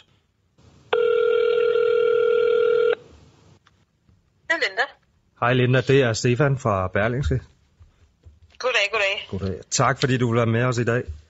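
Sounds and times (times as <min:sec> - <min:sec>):
faint hiss: 0:00.0 - 0:11.2
telephone ringing tone of an outgoing call: 0:00.9 - 0:03.0
speech: 0:04.6 - 0:07.5, 0:09.3 - 0:11.2.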